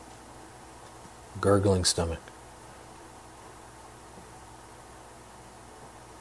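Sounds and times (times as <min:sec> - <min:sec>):
projector fan humming with soft whooshing hiss: 0:00.0 - 0:06.1
speech: 0:01.4 - 0:02.4.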